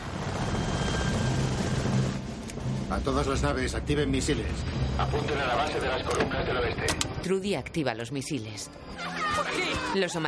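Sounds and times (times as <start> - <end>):
helicopters hovering: 0.0 - 6.8
speech: 2.9 - 10.2.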